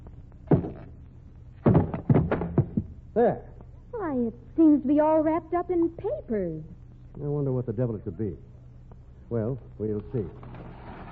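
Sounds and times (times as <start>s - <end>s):
hammer striking wooden packing case to knock its lid off: 1.6s - 2.9s
speech: 3.2s - 8.5s, 9.3s - 10.6s.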